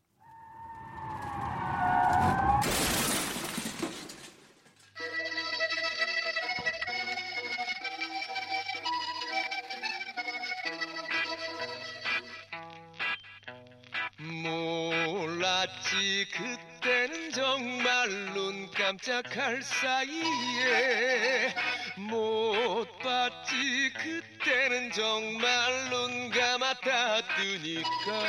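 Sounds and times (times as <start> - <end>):
tires skidding: 0.3 - 3.9
crash: 0.6 - 4.8
rock and trot fusion song with full band: 5.0 - 28.2
speech: 18.9 - 28.2.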